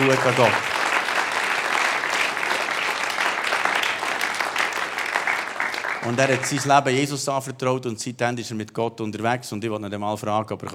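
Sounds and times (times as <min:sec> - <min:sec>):
speech: 0:00.0 - 0:00.7, 0:06.1 - 0:10.7
audience applause: 0:00.0 - 0:07.0.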